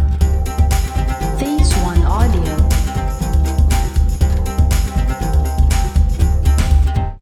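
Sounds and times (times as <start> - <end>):
jingle percussion: 0.2 - 7.1.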